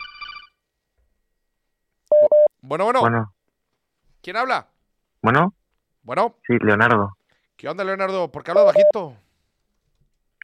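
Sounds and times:
telephone ringing with an incoming call: 0.0 - 0.6, 8.6 - 9.0
speech: 2.7 - 3.4, 4.2 - 9.2.

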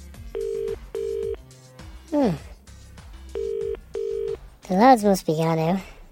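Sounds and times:
phone line ringback tone purring: 0.4 - 1.4, 3.4 - 4.4
speech: 2.2 - 2.5, 4.7 - 5.9.

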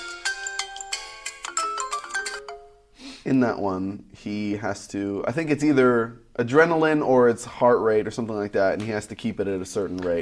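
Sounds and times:
mobile phone ringtone with bright melodic electronic notes: 0.0 - 2.8
speech: 3.2 - 10.2.

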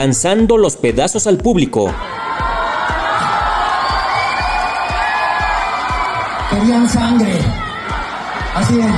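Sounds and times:
speech: 0.0 - 2.1, 6.6 - 7.6, 8.6 - 8.9
steady pounding beat: 0.0 - 8.9
large concert crowd screaming and cheering: 1.9 - 8.9.

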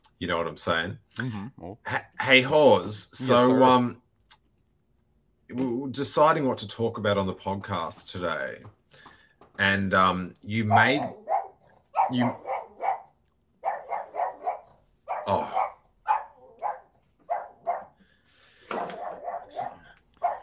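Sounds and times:
speech: 0.2 - 4.0, 5.5 - 8.8, 9.6 - 11.2, 12.1 - 12.5, 15.3 - 15.6
dog barking frantically at someone at the door: 10.6 - 18.0, 18.6 - 20.4.

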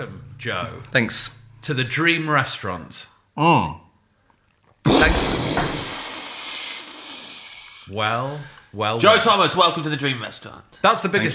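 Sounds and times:
speech: 0.0 - 3.8, 4.8 - 5.9, 7.9 - 11.3
fizzing hiss effect: 4.9 - 7.9.

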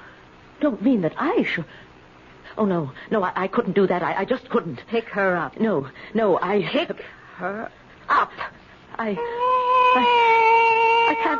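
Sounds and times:
speech: 0.6 - 1.9, 2.6 - 10.3, 11.1 - 11.3
cat mewing: 9.4 - 11.3.

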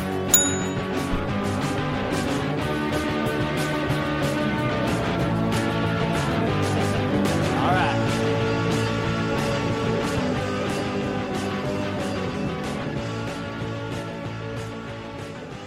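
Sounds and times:
music: 0.0 - 15.6
bell ringing: 0.3 - 1.3.

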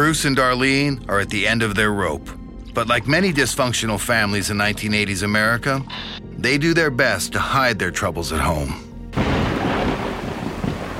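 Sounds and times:
speech: 0.1 - 9.3
deep thunder rumbling: 9.2 - 10.9
rain or wind noise: 9.2 - 10.9.

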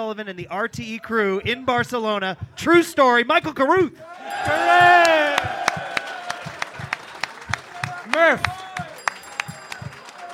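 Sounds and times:
speech: 0.0 - 5.6, 8.1 - 8.6
live audience applauding: 4.2 - 10.3.

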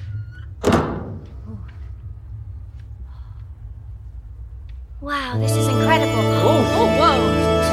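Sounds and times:
steady low rumble of noise: 0.0 - 7.6
door at the end of a long corridor opening with a solid clunk: 0.5 - 1.4
speech: 5.0 - 7.4.

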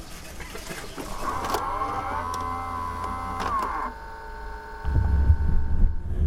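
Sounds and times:
taxi car door motorized whine: 1.0 - 6.2
deep taxi engine rumble: 4.8 - 6.2.

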